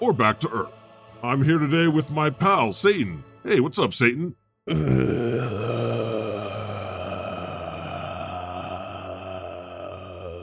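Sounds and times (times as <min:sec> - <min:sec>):
speech: 0:00.0 - 0:05.7
drawn-out low vocal groan used as an intro: 0:04.7 - 0:10.4.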